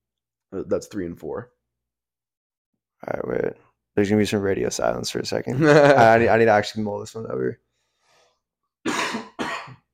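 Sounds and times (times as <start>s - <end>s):
speech: 0.5s - 1.6s, 3.0s - 7.6s
laughter: 5.5s - 6.3s
harsh coughs: 8.8s - 9.9s.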